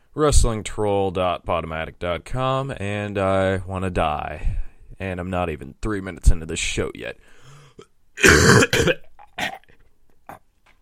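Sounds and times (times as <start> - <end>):
speech: 0.2 - 9.6
person coughing wetly: 8.2 - 9.6
person clearing throat of phlegm: 8.2 - 9.7.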